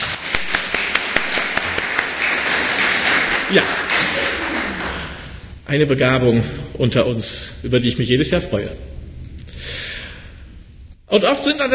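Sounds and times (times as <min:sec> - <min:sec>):
small group clapping hands: 0:00.0 - 0:05.4
steady hiss: 0:00.0 - 0:11.7
speech: 0:03.5 - 0:03.8, 0:05.7 - 0:08.9, 0:11.1 - 0:11.7.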